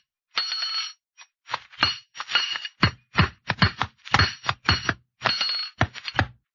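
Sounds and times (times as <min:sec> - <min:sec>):
hammer striking metal in a blacksmith shop: 0:01.8 - 0:06.3.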